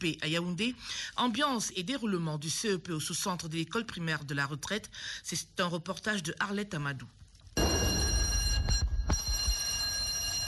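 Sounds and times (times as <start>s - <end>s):
speech: 0.0s - 7.2s
loud electric school bell ringing: 7.6s - 10.4s.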